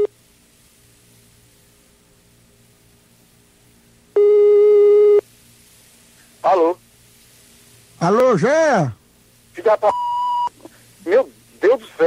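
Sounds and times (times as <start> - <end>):
telephone call tone beep while an outgoing call connects: 4.2 - 5.2, 9.9 - 10.5
speech: 6.5 - 6.8, 8.0 - 9.0, 9.6 - 10.1, 11.0 - 12.0.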